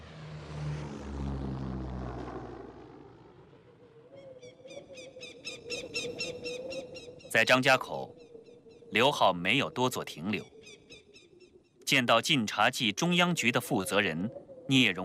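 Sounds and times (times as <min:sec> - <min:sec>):
propeller airplane flying overhead: 0:00.0 - 0:11.0
speech: 0:07.3 - 0:08.2, 0:08.9 - 0:10.5, 0:11.9 - 0:15.0.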